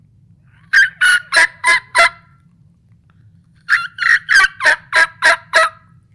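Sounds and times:
turkey mouth call yelp notes: 0.6s - 2.2s, 3.7s - 5.8s.

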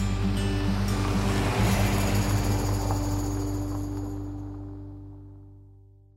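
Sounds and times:
waves washing onto the Coffs Harbour jetty foreshore: 0.1s - 4.5s.

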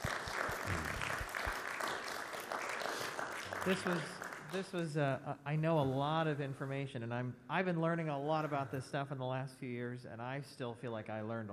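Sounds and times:
crowd applauding: 0.0s - 4.9s
speech: 3.6s - 11.5s.

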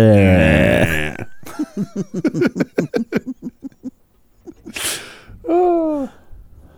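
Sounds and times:
person imitating a cow's low drawn-out moo: 0.0s - 1.3s
person laughing in rhythmic bursts: 0.4s - 6.1s
sharp breath: 4.7s - 5.4s.

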